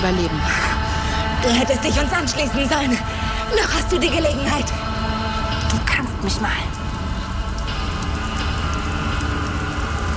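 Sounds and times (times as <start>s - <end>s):
speech: 0.0s - 0.7s, 1.4s - 4.9s, 5.7s - 6.8s
steady rain falling: 0.0s - 10.1s.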